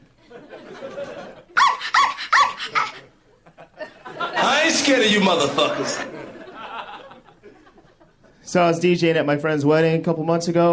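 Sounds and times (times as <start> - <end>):
laughter: 0.2 - 1.9, 2.6 - 8.4
dog barking: 1.6 - 3.0
speech: 4.9 - 6.2, 8.5 - 10.7.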